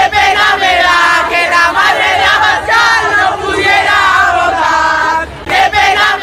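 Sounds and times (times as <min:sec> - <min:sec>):
crowd of protesters chanting in unison at a demonstration: 0:00.0 - 0:06.2.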